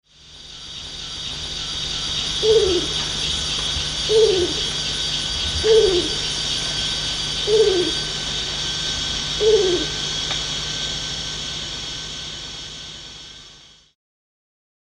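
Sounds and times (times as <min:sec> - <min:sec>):
high insect drone: 0:00.0 - 0:14.0
constant hum: 0:00.1 - 0:13.9
Bornean ground cuckoo giving low downslurred hoots at Danum: 0:02.1 - 0:10.2.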